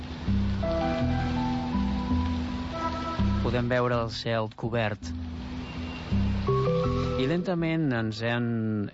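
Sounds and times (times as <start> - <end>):
sustained musical tones and low bass notes: 0.0 - 4.3, 5.1 - 7.9
steady rain falling: 0.0 - 8.9
speech: 3.5 - 5.2, 7.2 - 8.9.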